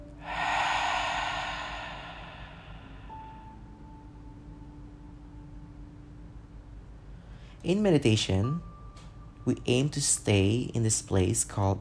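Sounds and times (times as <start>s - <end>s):
deep slow meditation breath: 0.0s - 3.6s
speech: 7.6s - 8.7s, 9.5s - 11.7s.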